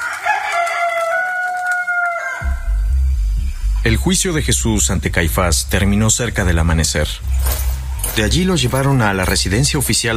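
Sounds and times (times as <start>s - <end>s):
rooster crowing: 0.0s - 2.8s
speech: 3.8s - 10.1s.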